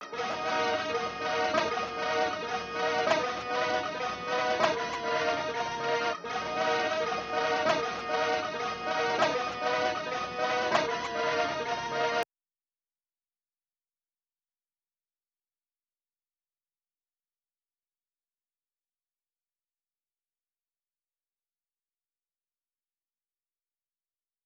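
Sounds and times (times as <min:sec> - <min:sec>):
synth melody loop in D sharp minor: 0:00.0 - 0:12.2.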